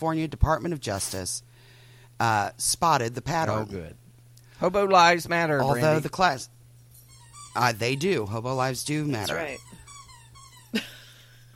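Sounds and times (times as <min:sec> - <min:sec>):
speech: 0:00.0 - 0:01.5, 0:02.2 - 0:04.0, 0:04.6 - 0:06.5, 0:07.6 - 0:09.7, 0:10.7 - 0:11.0
dog whining: 0:07.0 - 0:11.1.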